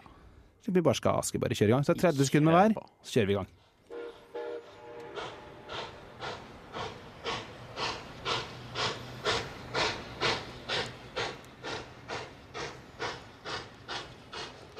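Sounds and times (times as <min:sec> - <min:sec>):
speech: 0:00.7 - 0:03.6
steam train chugging along rails: 0:03.9 - 0:14.7.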